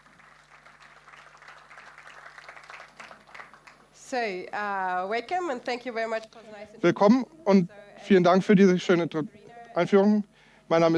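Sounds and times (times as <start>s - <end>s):
audience applauding: 0.0s - 3.9s
speech: 4.1s - 10.9s.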